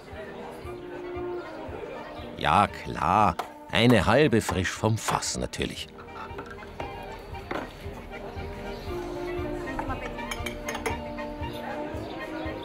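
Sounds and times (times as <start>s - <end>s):
murmur of voices at a village inn: 0.0s - 12.6s
speech: 2.4s - 6.0s
beer glasses clinking in a toast at a village inn: 4.4s - 7.7s, 9.7s - 11.3s
tableware noise: 5.9s - 7.8s, 9.8s - 11.3s.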